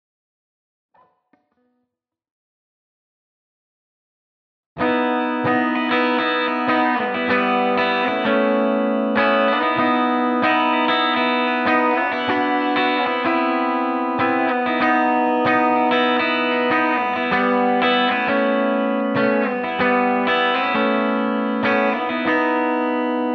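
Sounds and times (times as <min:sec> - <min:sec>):
open chords: 0:04.8 - 0:23.3.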